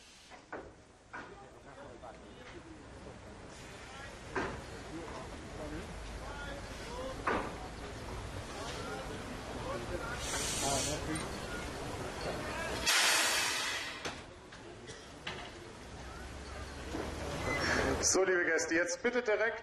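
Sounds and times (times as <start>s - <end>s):
steam locomotive hissing steam: 0.0s - 0.6s, 3.4s - 4.2s, 10.0s - 11.3s, 12.8s - 14.2s
crowd of voices chattering outdoors: 0.9s - 13.2s, 13.8s - 19.3s
speech: 18.1s - 19.6s.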